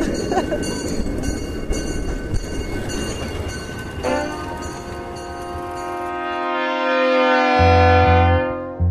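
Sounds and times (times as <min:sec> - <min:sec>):
steam train rumbling and hissing: 0:00.0 - 0:06.8
long loud steam train whistle: 0:04.0 - 0:08.8
low droning tone: 0:07.5 - 0:08.8.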